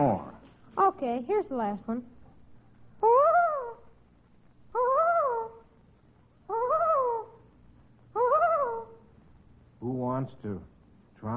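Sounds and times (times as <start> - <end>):
speech: 1.0 - 2.2, 10.2 - 11.3
loon calling: 3.0 - 4.0, 4.7 - 5.8, 6.4 - 7.5, 8.1 - 9.1.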